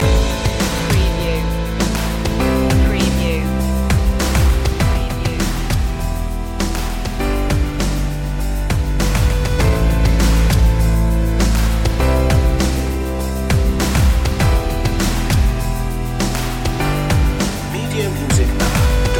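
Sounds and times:
electro slam music loop: 0.0s - 19.1s.

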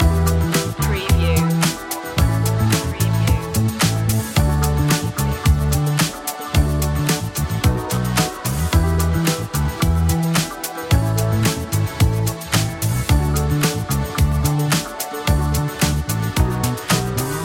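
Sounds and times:
soul music loop: 0.0s - 17.4s.

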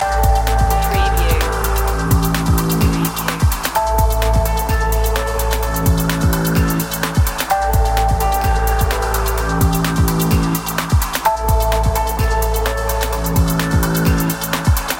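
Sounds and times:
chill out dream loop: 0.0s - 14.9s.

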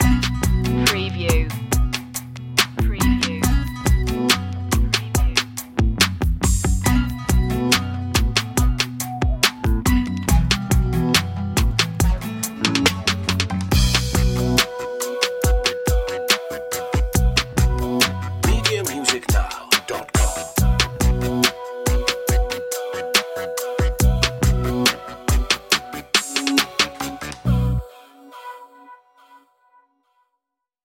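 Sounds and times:
deep hip hop music: 0.0s - 28.6s.

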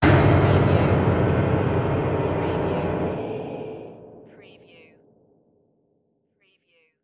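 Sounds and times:
horror piano smash: 0.0s - 4.4s.

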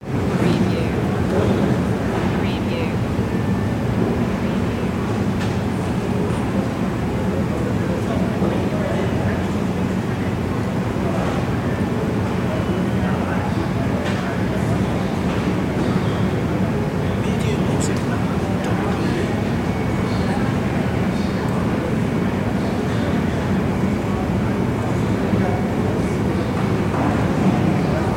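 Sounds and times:
airport ambience: 0.0s - 28.1s.

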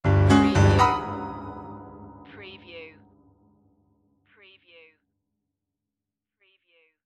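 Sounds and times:
piano horror stab: 0.0s - 2.4s.

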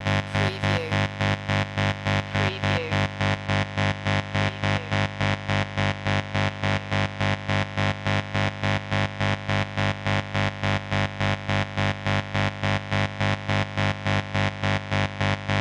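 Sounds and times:
electric static hum pulse: 0.0s - 15.5s.

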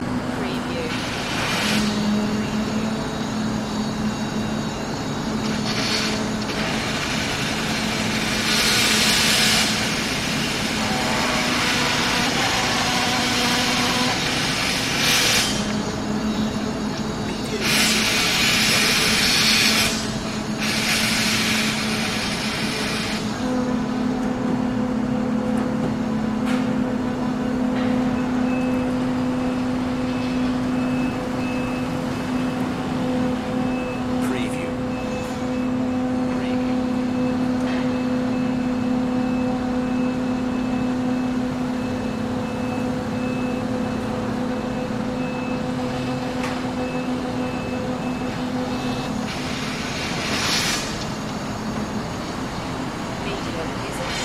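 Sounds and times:
nighttime construction noise: 0.0s - 54.2s.

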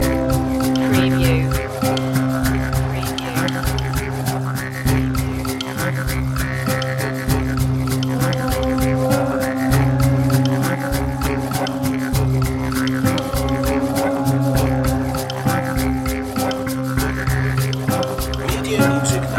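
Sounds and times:
Australian Aboriginal music loop: 0.0s - 19.3s.

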